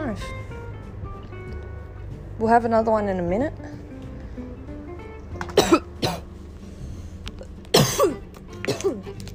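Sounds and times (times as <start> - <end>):
speech: 0.2 - 0.4, 2.4 - 3.8
harsh raspy coughs after smoking a cone: 5.5 - 6.3, 7.7 - 9.0.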